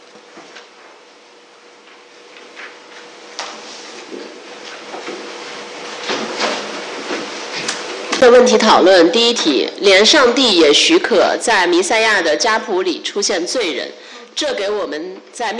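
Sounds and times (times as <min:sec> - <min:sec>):
steady low hum: 0:00.0 - 0:15.5
chairs dragged across a floor into a circle: 0:03.5 - 0:08.2
speech: 0:08.2 - 0:15.5.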